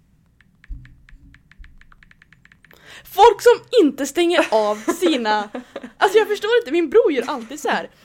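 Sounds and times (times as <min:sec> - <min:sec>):
phone keyboard clicks: 0:00.3 - 0:02.8
speech: 0:03.0 - 0:08.0
laughter: 0:04.4 - 0:06.1.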